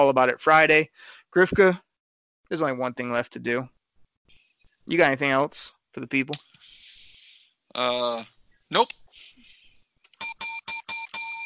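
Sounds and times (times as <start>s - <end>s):
speech: 0.0s - 1.8s, 2.5s - 3.8s, 4.8s - 6.5s, 7.7s - 9.3s
metallic bell ringing: 10.2s - 11.4s.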